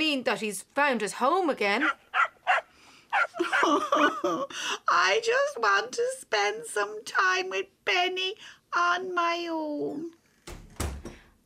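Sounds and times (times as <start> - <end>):
speech: 0.1 - 2.2, 3.4 - 10.2
dog barking: 1.8 - 3.6
laughter: 3.4 - 4.5.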